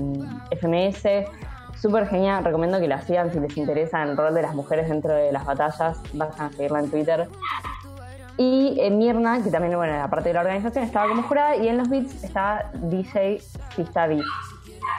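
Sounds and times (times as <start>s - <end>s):
speech: 0.0s - 7.6s, 8.4s - 14.5s
dog barking: 11.0s - 11.3s, 14.2s - 14.9s.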